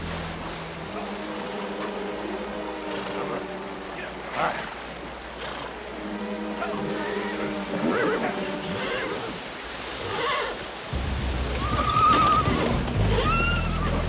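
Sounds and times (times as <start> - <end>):
low droning hum: 0.0 - 0.9, 10.9 - 14.0
fast shallow river rushing and churning: 0.0 - 14.0
riders on horseback wading across a river: 0.0 - 14.0.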